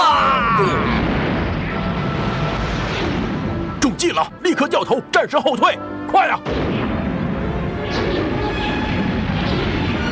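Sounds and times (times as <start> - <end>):
explosions from an enemy space fleet's bombardment: 0.6 - 3.8, 6.4 - 10.1
speech: 4.2 - 6.8.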